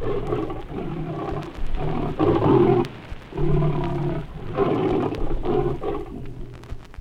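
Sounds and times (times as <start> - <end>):
lion growling and roaring during an encounter with a Grévy's zebra: 0.0 - 6.6.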